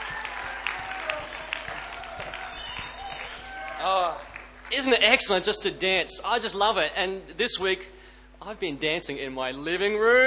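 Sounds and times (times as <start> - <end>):
large group applauding: 0.0 - 4.8
speech: 4.8 - 10.2.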